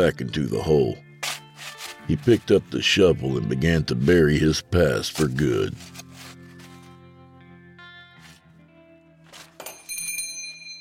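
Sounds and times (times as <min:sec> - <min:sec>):
speech: 0:00.0 - 0:01.1, 0:02.1 - 0:06.0
shop doorbell above the door jingling: 0:09.6 - 0:10.8.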